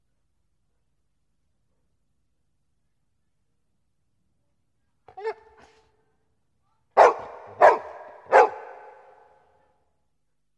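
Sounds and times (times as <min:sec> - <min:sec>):
dog yelping: 0:05.1 - 0:05.8, 0:07.0 - 0:09.1
dog barking loudly and hoarsely: 0:07.0 - 0:09.2.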